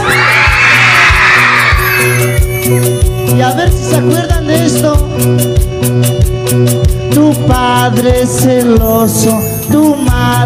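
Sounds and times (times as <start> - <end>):
crowd of young women shrieking and cheering: 0.0 - 3.2
thumping steady bass beat: 0.0 - 10.4
speech: 2.7 - 10.4.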